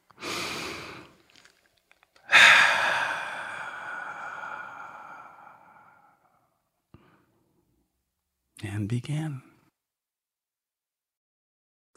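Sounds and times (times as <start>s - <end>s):
deep breath: 0.1s - 1.2s, 2.2s - 7.5s
speech: 8.7s - 9.5s.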